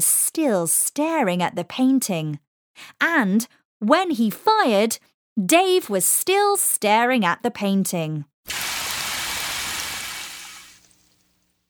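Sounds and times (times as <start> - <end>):
speech: 0.0 - 8.6
hiss of water spraying onto a canvas: 8.5 - 11.3.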